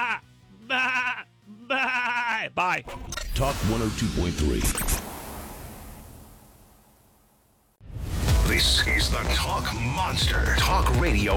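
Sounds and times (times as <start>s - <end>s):
sheep bleating: 0.0s - 2.8s
speech: 1.8s - 5.0s, 8.6s - 11.3s.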